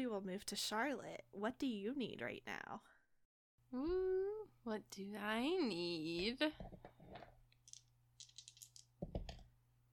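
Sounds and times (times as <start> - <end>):
speech: 0.0 - 2.9, 3.7 - 7.2
dice clattering and rattling: 7.6 - 9.4.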